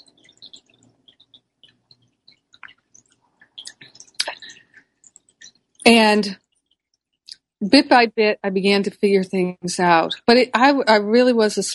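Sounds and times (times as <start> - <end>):
wet mouth noises: 0.0 - 5.9
soft lip smacking: 0.2 - 5.6
speech: 5.8 - 6.4, 7.6 - 11.7.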